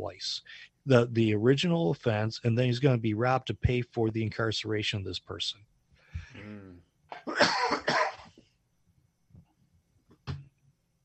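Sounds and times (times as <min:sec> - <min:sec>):
speech: 0:00.0 - 0:05.7, 0:06.3 - 0:08.0
person coughing in a raspy fit: 0:06.4 - 0:08.4.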